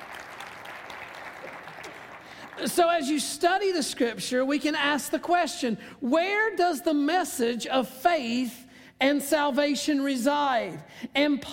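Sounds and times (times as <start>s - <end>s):
church congregation clapping during a sermon: 0.0s - 3.1s
speech: 2.6s - 11.5s.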